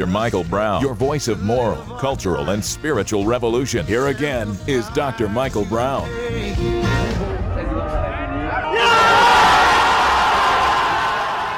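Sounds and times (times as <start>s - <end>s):
speech: 0.0s - 6.8s
large crowd cheering and shouting in victory: 7.3s - 11.5s.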